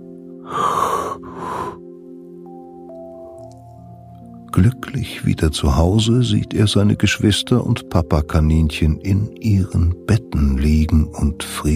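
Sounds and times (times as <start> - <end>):
person yawning: 0.4 - 1.8
speech: 4.6 - 11.7.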